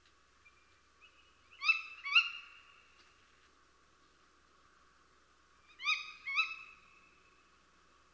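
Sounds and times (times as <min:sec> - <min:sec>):
tawny owl calling in rough paired notes: 0:00.4 - 0:03.0, 0:05.6 - 0:07.4.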